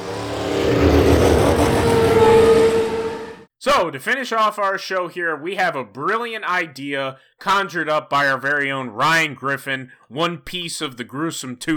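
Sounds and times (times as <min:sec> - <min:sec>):
car engines revving: 0:00.0 - 0:03.4
speech: 0:03.7 - 0:11.7.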